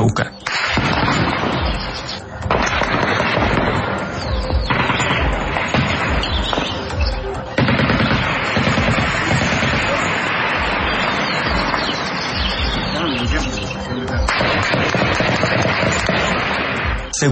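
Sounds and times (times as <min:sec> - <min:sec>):
constant noisy background: 0:00.0 - 0:17.2
rifle gunfire bursts from an armed group firing on an army unit in rural Caldono, Cauca: 0:00.5 - 0:17.2
faint voices: 0:01.6 - 0:17.2.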